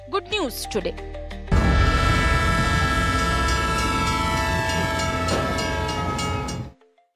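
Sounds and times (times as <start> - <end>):
speech: 0.4 - 1.2
sustained tonal horn-like hum: 1.5 - 6.7
train rumbling departing from station: 1.5 - 6.7
rhythmic clatter of train: 1.6 - 6.7.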